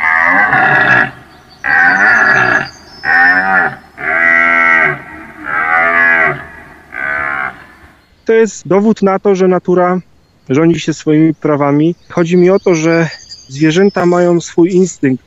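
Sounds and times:
hungry cows mooing during milking on a farm: 0.0s - 8.0s
speech: 0.3s - 1.2s, 8.3s - 15.2s.

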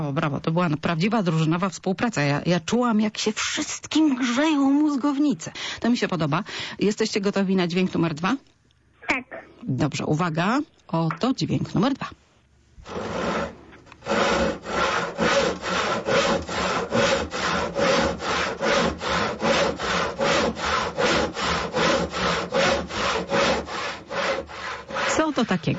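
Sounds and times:
speech: 0.0s - 8.5s, 9.1s - 12.2s, 12.8s - 13.4s, 25.3s - 25.7s
manual non-electric hand saw cutting wood: 12.8s - 25.7s.

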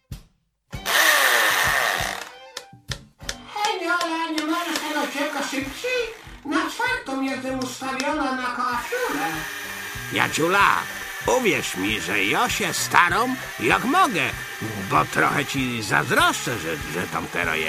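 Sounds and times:
power drill whining: 0.8s - 2.6s, 4.4s - 7.0s, 8.8s - 17.6s
speech: 5.6s - 17.6s.

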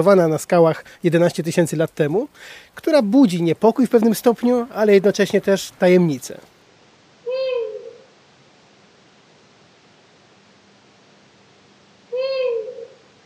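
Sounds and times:
speech: 0.0s - 6.5s
hiss: 0.0s - 13.2s
female long-eared owl nasal wailing calls: 7.2s - 8.1s, 12.1s - 13.1s.

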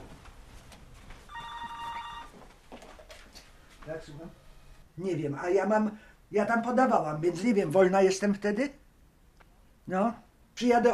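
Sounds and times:
faint noise: 0.0s - 10.9s
telephone ringing with electronic trill in Poznań: 1.3s - 2.4s
speech: 3.9s - 4.4s, 5.0s - 8.8s, 9.9s - 10.9s.

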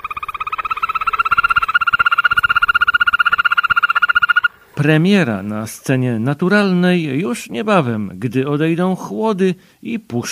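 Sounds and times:
green toad mating call trill: 0.0s - 4.9s
speech: 4.8s - 10.3s.

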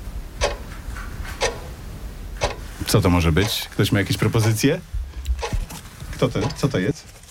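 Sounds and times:
low hiss: 0.0s - 7.1s
clock ticking: 0.4s - 0.8s, 1.4s - 1.8s, 2.4s - 6.9s
speech: 2.9s - 5.5s, 6.2s - 7.1s.

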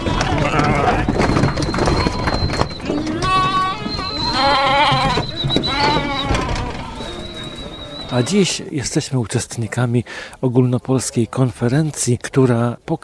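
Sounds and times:
flock of sheep bleating: 0.0s - 1.3s, 2.8s - 8.2s
outdoor noise: 0.0s - 13.0s
speech: 8.2s - 13.0s.

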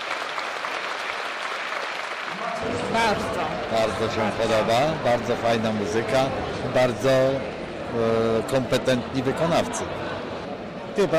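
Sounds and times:
audience applause at an evening of entertainment and art: 0.0s - 4.6s
speech: 2.6s - 10.1s, 11.0s - 11.1s.

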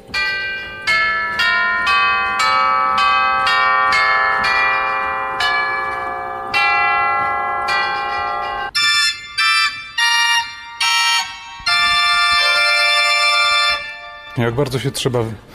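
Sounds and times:
tubular bells played on a pipe organ: 0.0s - 15.1s
speech: 14.5s - 15.5s.

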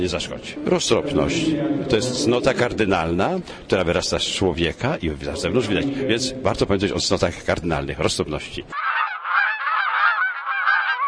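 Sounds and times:
speech: 0.0s - 8.8s
domestic geese honking: 8.8s - 11.0s.

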